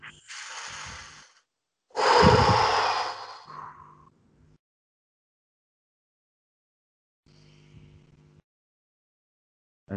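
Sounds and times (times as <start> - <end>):
slow deep breath in and airy exhale during meditation: 0.1 - 4.1.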